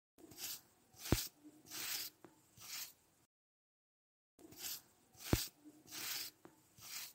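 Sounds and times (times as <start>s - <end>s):
comb brushing hair: 0.3s - 3.0s, 4.5s - 7.1s.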